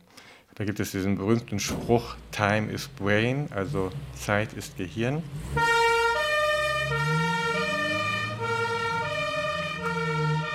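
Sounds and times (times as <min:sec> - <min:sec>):
speech: 0:00.6 - 0:05.8, 0:06.9 - 0:07.3
low ambulance engine rumble: 0:01.2 - 0:10.5
loud two-tone ambulance siren alternating between high and low pitches: 0:05.4 - 0:10.5.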